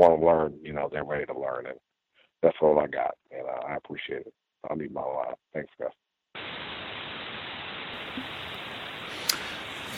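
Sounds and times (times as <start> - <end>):
speech: 0.0 - 6.0, 8.2 - 8.4
phone line static hiss: 6.4 - 9.9
faint click: 9.2 - 9.6.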